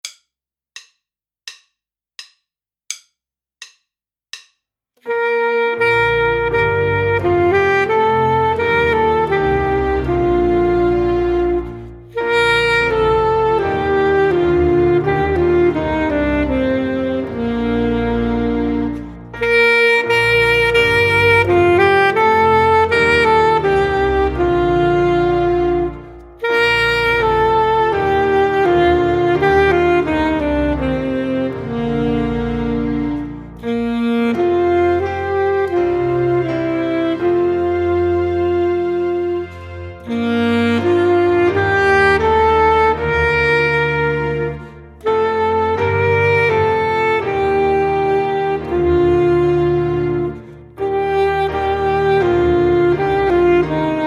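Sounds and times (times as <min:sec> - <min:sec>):
full saxophone ensemble playing a hymn: 0:05.1 - 0:54.0.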